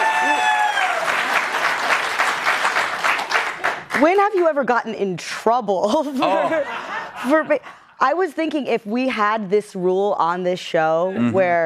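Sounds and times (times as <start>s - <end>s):
audience applause: 0.0s - 4.0s
speech: 4.0s - 11.6s.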